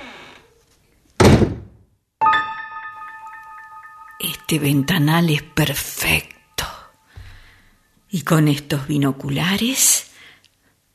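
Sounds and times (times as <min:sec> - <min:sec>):
door shutting with a solid thud: 0:01.2 - 0:01.8
speech: 0:04.2 - 0:06.4, 0:08.1 - 0:10.1.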